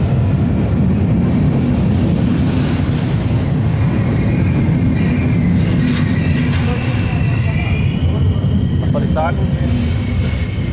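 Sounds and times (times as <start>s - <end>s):
train rumbling into a station: 0.0s - 10.7s
faint high metallic squeals: 3.4s - 10.7s.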